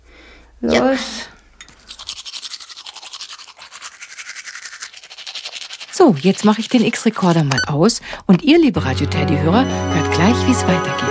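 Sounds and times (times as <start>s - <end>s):
speech: 0.6s - 1.4s, 6.1s - 11.1s
teeth brushed with a toothbrush and toothpaste: 1.8s - 7.6s.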